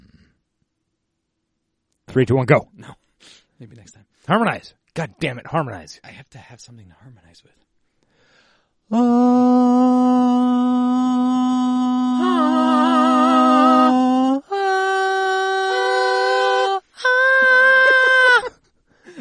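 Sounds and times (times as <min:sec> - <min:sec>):
speech: 0:02.1 - 0:07.7, 0:08.9 - 0:10.5
people imitating cow mooing: 0:08.9 - 0:18.5.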